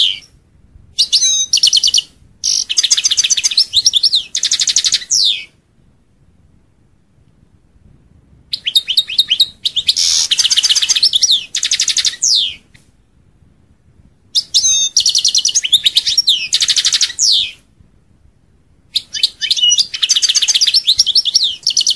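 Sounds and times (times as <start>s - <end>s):
European goldfinch singing: 1.0s - 5.5s, 8.6s - 12.6s, 14.4s - 17.6s, 19.0s - 21.9s.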